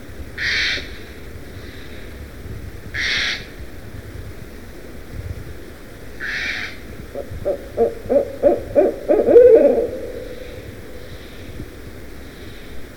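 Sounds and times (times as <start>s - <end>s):
faint background hiss: 0.0s - 12.9s
barred owl hooting: 0.4s - 0.9s, 6.2s - 11.5s
crow cawing: 0.4s - 0.9s, 3.0s - 3.5s, 6.2s - 11.3s.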